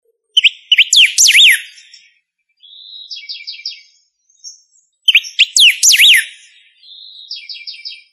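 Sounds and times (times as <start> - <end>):
bird song: 0.0 - 8.1.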